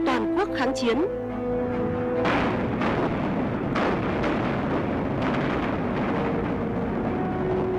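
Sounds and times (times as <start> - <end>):
speech: 0.4 - 1.2
continuous rumbling roar: 1.2 - 7.7
artillery guns firing from a fort at night: 2.2 - 7.7.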